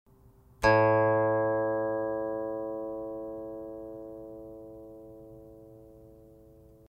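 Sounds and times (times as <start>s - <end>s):
guqin: 0.6s - 3.8s.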